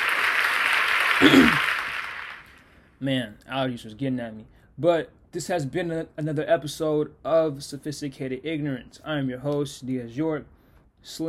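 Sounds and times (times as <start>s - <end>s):
round of applause: 0.0s - 2.7s
speech: 3.0s - 11.2s.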